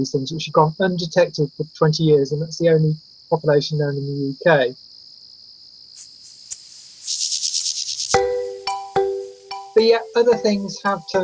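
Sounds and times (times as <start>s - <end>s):
speech: 0.0s - 4.8s, 9.8s - 11.2s
mole cricket churring: 0.0s - 11.2s
rapid pulsed buzzing: 5.9s - 11.2s
clear tonal notes: 8.2s - 11.2s.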